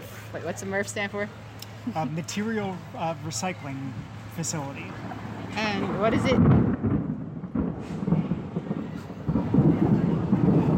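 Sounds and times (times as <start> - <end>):
speech: 0.4 - 6.7
deep rolling thunder: 5.0 - 10.7.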